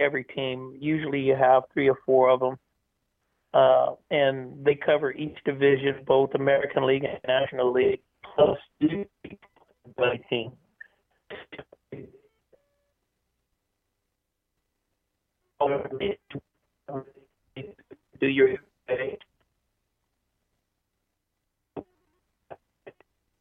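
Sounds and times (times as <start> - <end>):
speech: 0.0 - 2.6, 3.5 - 10.6, 11.3 - 12.2, 15.6 - 19.3
voice over a thin band-limited cell phone line breaking up: 0.0 - 2.6, 3.6 - 9.3, 10.0 - 10.5, 15.6 - 17.0, 17.6 - 19.2.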